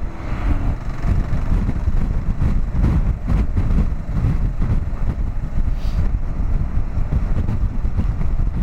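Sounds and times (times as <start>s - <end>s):
faint drone of a motorcycle engine: 0.0s - 8.6s
strong wind buffeting the microphone during a motorcycle ride across a bridge: 0.0s - 8.6s.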